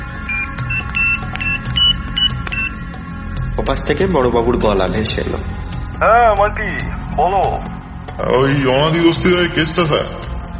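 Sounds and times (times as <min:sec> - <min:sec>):
mobile phone keypad beeps as a number is dialled: 0:00.3 - 0:02.7
speech: 0:03.6 - 0:10.2.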